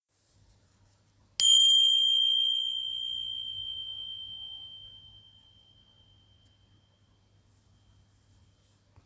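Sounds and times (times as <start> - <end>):
small smooth Tibetan cymbals: 1.4 - 6.2.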